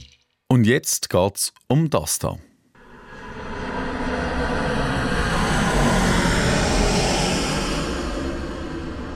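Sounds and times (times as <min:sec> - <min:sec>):
speech: 0:00.5 - 0:02.5
jet aircraft roaring overhead with a broad rumbling whoosh: 0:02.8 - 0:09.1.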